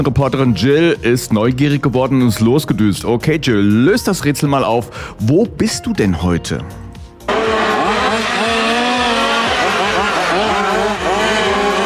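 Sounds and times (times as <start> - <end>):
speech: 0.0 - 6.8
remote-control model cars racing at full throttle with high-pitched electric motors: 7.3 - 11.8.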